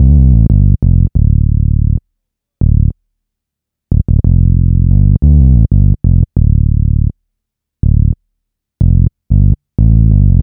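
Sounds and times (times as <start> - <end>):
hip hop bass in D minor: 0.0 - 2.0, 2.6 - 2.9, 3.9 - 7.1, 7.8 - 8.2, 8.8 - 10.4.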